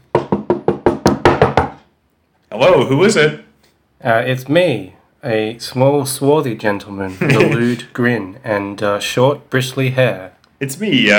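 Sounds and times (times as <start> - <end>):
simulated knocking on a door: 0.0 - 1.9
speech: 2.6 - 11.1
laughter: 7.1 - 7.9.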